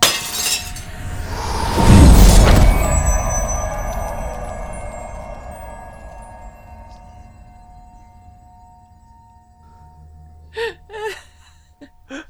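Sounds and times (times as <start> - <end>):
shattering, breaking debris: 0.0 - 7.2
massive explosion set off by object dropped onto metal spar: 0.5 - 8.7.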